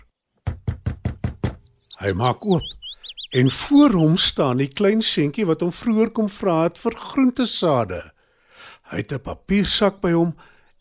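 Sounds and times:
faint bird chirps: 0:00.0 - 0:04.6, 0:08.8 - 0:10.7
knocking on a wooden door: 0:00.4 - 0:01.7
speech: 0:02.0 - 0:08.2, 0:08.9 - 0:10.5.

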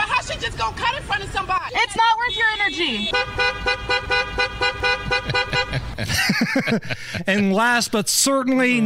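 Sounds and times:
speech: 0:00.4 - 0:05.4, 0:06.0 - 0:08.8
car horn honking: 0:01.7 - 0:06.0
laughter: 0:05.2 - 0:07.3.

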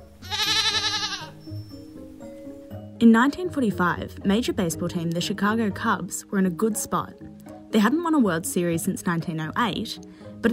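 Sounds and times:
goat bleating: 0:00.2 - 0:01.4
speech: 0:03.0 - 0:10.5.

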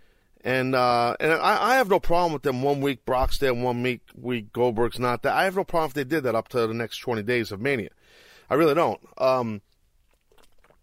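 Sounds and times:
speech: 0:00.4 - 0:09.7
sipping water: 0:09.6 - 0:10.8
swallowing: 0:10.0 - 0:10.8.

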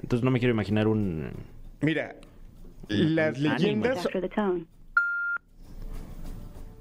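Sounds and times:
speech: 0:00.1 - 0:02.3, 0:02.9 - 0:04.8
steady electronic phone tone of a failed call: 0:05.0 - 0:05.5.

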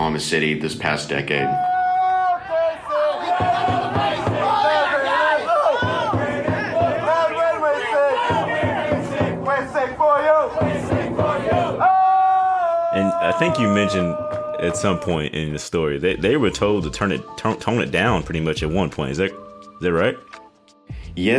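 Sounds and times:
speech: 0:00.0 - 0:01.7, 0:13.2 - 0:20.4, 0:21.2 - 0:21.3
soccer supporters shouting and cheering: 0:01.1 - 0:15.4
crowd of soccer supporters from a rowdy fan club chanting in unison: 0:01.7 - 0:13.6.

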